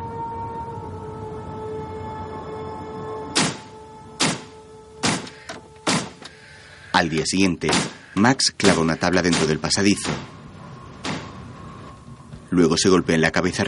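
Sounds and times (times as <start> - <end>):
faint droning hum: 0.0 - 13.6
low rumble of city traffic: 0.0 - 13.6
sharp loud whooshing thuds: 3.4 - 6.2
speech: 7.0 - 10.4, 12.6 - 13.6.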